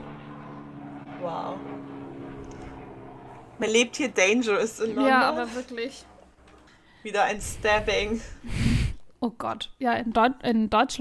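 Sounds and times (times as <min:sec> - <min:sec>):
droning engine hum with a low rumbling tone: 0:00.0 - 0:08.4
speech: 0:01.2 - 0:02.0, 0:03.6 - 0:06.1, 0:07.0 - 0:08.6, 0:09.2 - 0:10.9.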